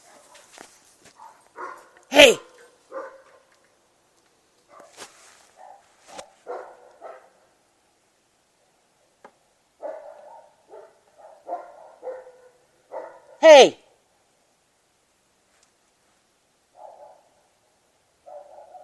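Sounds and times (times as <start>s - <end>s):
large dog barking: 1.2s - 3.6s, 5.6s - 7.5s, 9.8s - 13.4s, 16.7s - 17.6s, 18.2s - 18.8s
speech: 2.2s - 2.4s, 13.6s - 13.8s.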